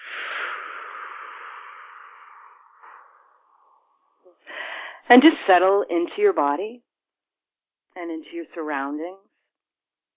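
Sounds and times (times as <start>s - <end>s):
deep breath in and out during a guided relaxation session: 0.0s - 5.1s
speech: 5.1s - 6.8s, 8.0s - 9.2s.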